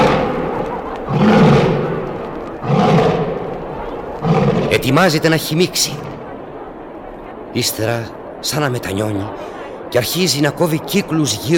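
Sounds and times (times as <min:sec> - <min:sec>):
lion roaring: 0:00.0 - 0:05.2
speech: 0:04.8 - 0:06.2, 0:07.6 - 0:11.5.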